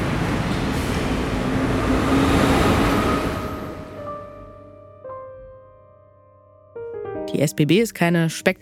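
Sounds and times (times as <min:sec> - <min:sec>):
train departing from station platform: 0:00.0 - 0:04.6
speech: 0:07.3 - 0:08.6.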